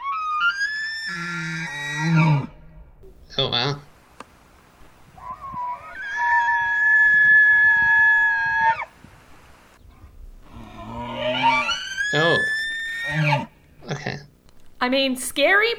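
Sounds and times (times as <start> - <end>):
elk bugling with high-pitched whistle-like call: 0.0 - 2.6, 5.0 - 13.6
speech: 1.1 - 1.5, 3.4 - 3.8, 14.9 - 15.7.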